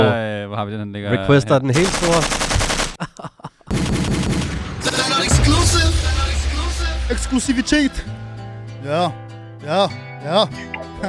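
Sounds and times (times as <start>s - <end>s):
speech: 0.0s - 2.4s, 3.0s - 4.2s, 7.1s - 8.2s, 8.8s - 11.0s
Kalashnikov automatic rifle fire: 1.8s - 3.1s, 3.7s - 5.9s
laughter: 1.8s - 3.7s
low rumbling backdrop: 5.2s - 9.5s.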